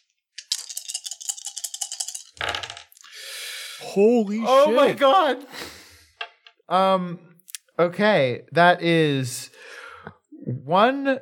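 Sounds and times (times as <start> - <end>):
dice rattling in a cup or hand: 0.0 - 3.1
speech: 3.8 - 5.6, 6.7 - 9.4, 10.6 - 11.2.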